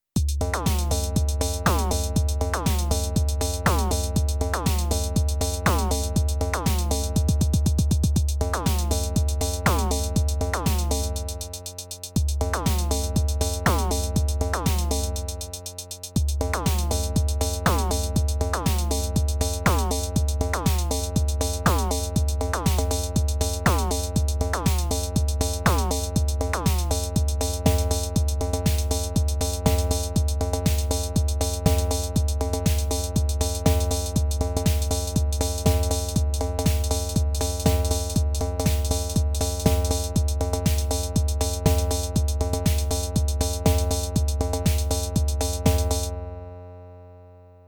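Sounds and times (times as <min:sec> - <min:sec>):
DrumBrute drum machine impact: 0:00.2 - 0:46.2.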